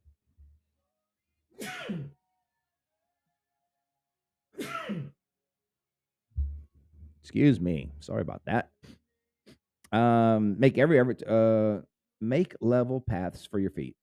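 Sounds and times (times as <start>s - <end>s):
person sneezing: 1.6s - 2.2s, 4.6s - 5.2s
soft low thumps: 6.4s - 7.3s
speech: 7.3s - 9.0s, 9.9s - 14.0s.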